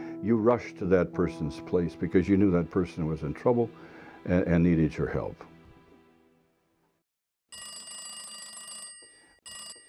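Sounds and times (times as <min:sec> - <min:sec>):
speech: 0:00.2 - 0:05.5
party-line telephone bell ringing in long-short pattern: 0:07.5 - 0:09.8.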